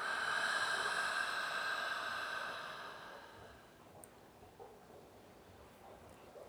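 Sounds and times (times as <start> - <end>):
person inhaling through nose and exhaling through mouth: 0.0 - 3.7.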